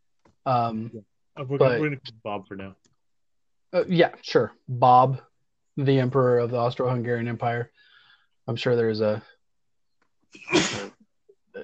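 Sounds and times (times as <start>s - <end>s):
speech: 0.4s - 2.9s, 3.7s - 7.9s, 8.5s - 9.4s, 10.3s - 10.6s
person sneezing: 10.4s - 10.9s.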